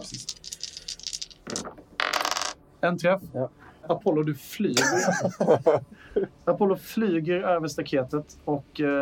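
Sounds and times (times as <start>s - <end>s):
dice rattling and clattering across a hard tabletop: 0.0s - 2.6s
speech: 2.8s - 8.9s
laughter: 4.8s - 5.9s.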